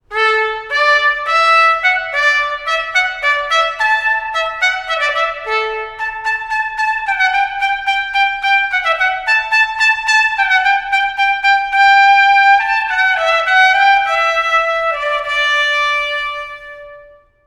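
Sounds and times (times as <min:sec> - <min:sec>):
solo hornpipe tune: 0:00.0 - 0:17.4.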